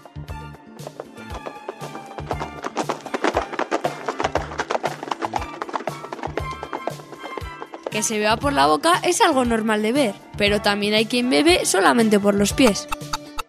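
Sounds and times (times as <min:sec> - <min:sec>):
zebra hooves galloping across the savanna: 0:00.0 - 0:09.6
speech: 0:08.0 - 0:13.0.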